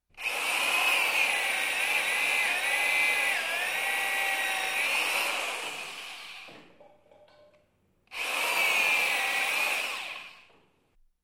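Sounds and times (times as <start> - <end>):
electric drill: 0.2 - 6.6, 8.1 - 10.7.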